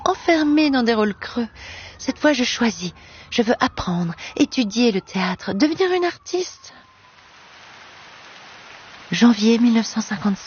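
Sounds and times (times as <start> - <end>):
speech: 0.2 - 6.8, 9.1 - 10.4
rain pattering on leaves and ground in a garden: 4.6 - 10.4.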